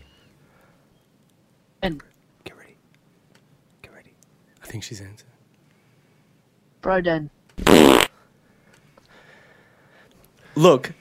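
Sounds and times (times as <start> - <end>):
speech: 1.8 - 2.1, 4.7 - 5.3, 6.8 - 8.1, 10.6 - 10.9
fart: 7.6 - 8.1.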